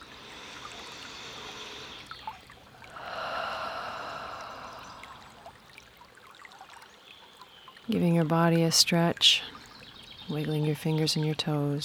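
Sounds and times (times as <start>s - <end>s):
slow deep breath during a guided relaxation: 0.0s - 2.2s, 2.9s - 5.5s
speech: 7.9s - 9.5s, 10.3s - 11.8s.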